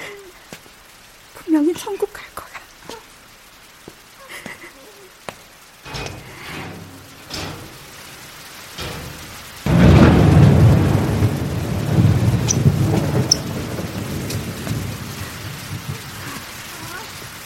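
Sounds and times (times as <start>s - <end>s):
heavy rain on the windy rooftop of an apartment building on reclaimed seaside land: 0.0s - 17.4s
speech: 1.5s - 2.5s
deep rolling rumble of thunder: 5.8s - 17.4s.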